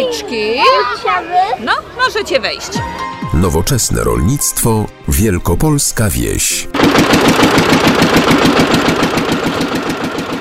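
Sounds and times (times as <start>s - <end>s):
speech: 0.0s - 8.7s
rebuilt farm tractor diesel engine chugging in Wielkopolska Poland: 6.0s - 10.3s.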